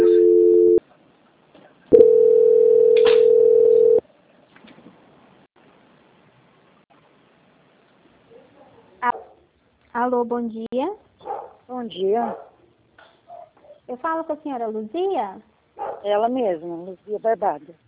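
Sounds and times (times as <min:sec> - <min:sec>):
telephone tones while a call is transferred: 0:00.0 - 0:00.8, 0:01.9 - 0:04.0
speech: 0:10.1 - 0:11.1, 0:11.7 - 0:12.5, 0:13.9 - 0:17.8.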